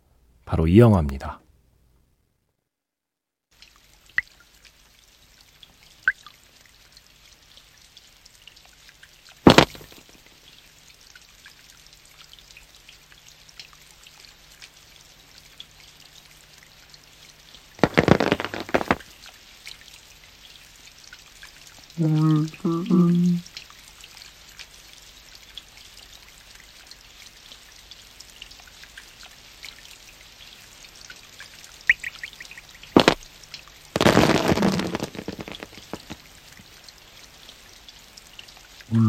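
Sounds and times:
speech: 0:00.5 - 0:01.4
bursts of water pouring down on an umbrella: 0:03.6 - 0:39.0
raindrops pattering on an umbrella: 0:03.6 - 0:39.0.

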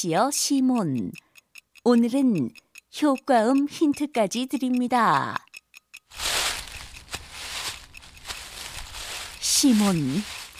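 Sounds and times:
speech: 0:00.0 - 0:05.5, 0:09.6 - 0:10.4
footsteps crunching through dry leaves: 0:06.1 - 0:10.5.

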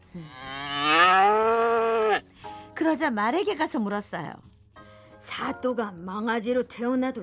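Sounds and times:
speech: 0:00.2 - 0:00.6, 0:02.8 - 0:04.5, 0:05.4 - 0:07.2
cow mooing: 0:00.2 - 0:02.2.

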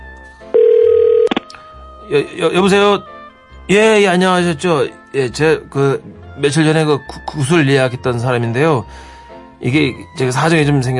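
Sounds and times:
telephone tone: 0:00.5 - 0:01.4
speech: 0:02.1 - 0:03.1, 0:03.7 - 0:10.9.

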